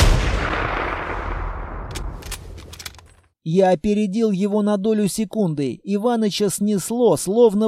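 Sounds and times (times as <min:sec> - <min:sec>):
gunshot on a snowy mountain slope: 0:00.0 - 0:02.6
speech: 0:03.4 - 0:07.6.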